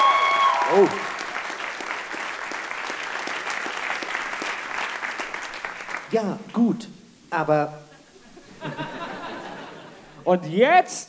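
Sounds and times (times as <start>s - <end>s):
audience applause: 0.0s - 6.1s
speech: 0.7s - 1.1s, 6.1s - 7.8s, 10.3s - 11.0s
laughter: 7.9s - 10.3s.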